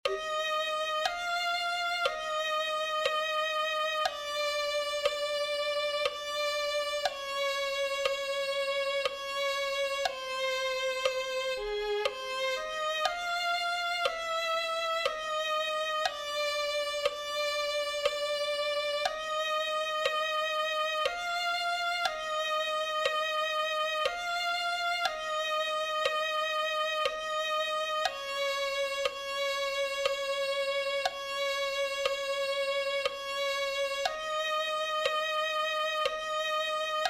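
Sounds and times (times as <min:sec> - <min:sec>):
violin: 0:00.0 - 0:37.0.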